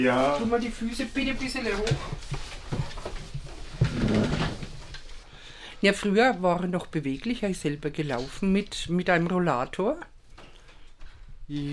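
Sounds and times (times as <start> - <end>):
speech: 0.0 - 2.4, 5.8 - 10.1, 11.5 - 11.7
faint room noise: 0.0 - 11.7
chair scraping drag across the floor: 0.2 - 5.3
chair knocks: 3.8 - 4.8.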